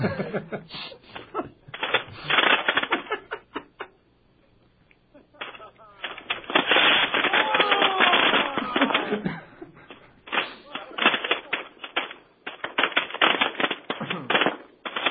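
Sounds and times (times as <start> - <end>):
people laughing: 0.0 - 4.0, 5.1 - 12.0
string of firecrackers popping for New Year: 1.1 - 4.0, 4.9 - 15.0
faint voices: 5.1 - 12.2.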